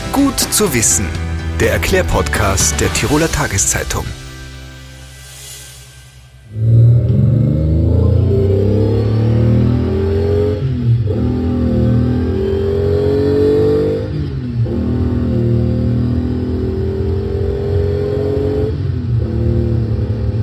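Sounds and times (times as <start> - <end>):
speech: 0.2 - 4.2
car engine revving and accelerating hard during aggressive driving: 6.5 - 20.4.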